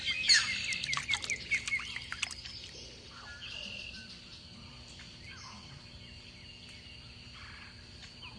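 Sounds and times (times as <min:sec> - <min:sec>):
little blue heron fishing: 0:00.2 - 0:03.8.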